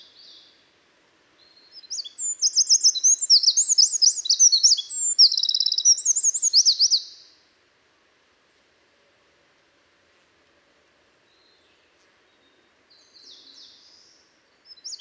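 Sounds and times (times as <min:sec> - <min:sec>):
Eurasian wren Troglodytes troglodytes singing trills: 0:01.6 - 0:07.2, 0:13.0 - 0:14.9.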